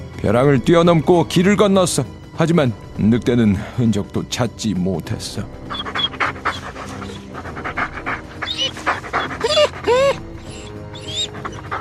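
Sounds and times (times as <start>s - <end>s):
speech: 0.2s - 5.9s
dog panting hard from exhaustion after a long run: 5.6s - 11.7s.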